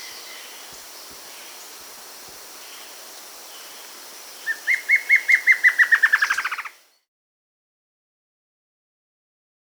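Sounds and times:
Plain antvireo Dysithamnus mentalis song quickening into a descending trill in South America: 0:00.0 - 0:07.0
soft background hiss: 0:00.0 - 0:07.0.

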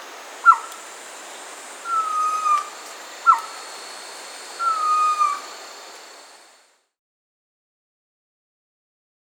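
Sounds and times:
steady hiss: 0:00.0 - 0:07.0
Pavonine quetzal song in South America, sharp note and falling whistle: 0:00.4 - 0:00.8, 0:01.8 - 0:03.7, 0:04.6 - 0:05.5.

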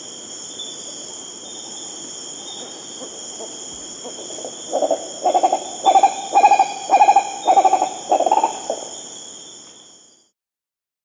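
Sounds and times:
high-pitched insect trilling in South America: 0:01.6 - 0:09.5
green ibis giving rolling hooting calls in South America: 0:03.0 - 0:08.9.

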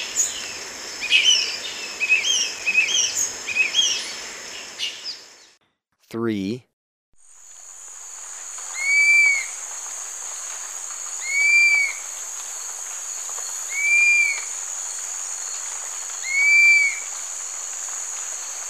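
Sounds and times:
steady high insect hiss in Ecuador: 0:00.0 - 0:05.5, 0:07.2 - 0:18.6
speech: 0:06.1 - 0:06.7
Dusky-capped flycatcher plaintive whistles in Ecuador: 0:08.7 - 0:09.6, 0:11.2 - 0:12.0, 0:13.7 - 0:14.5.

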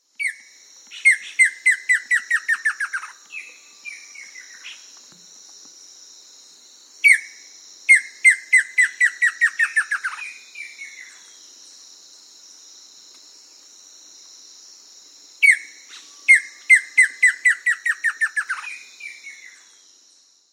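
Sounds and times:
White-lined antbird calling in South America: 0:00.2 - 0:04.9, 0:07.0 - 0:11.2, 0:15.4 - 0:19.6.

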